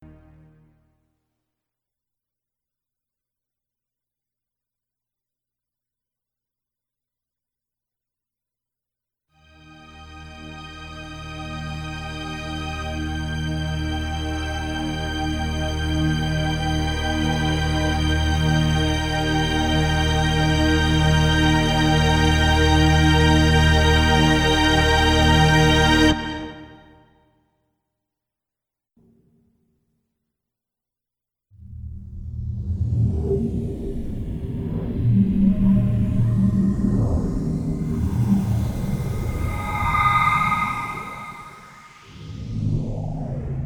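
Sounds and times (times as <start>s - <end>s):
E flat string drone: 9.6s - 26.9s, 32.6s - 43.6s.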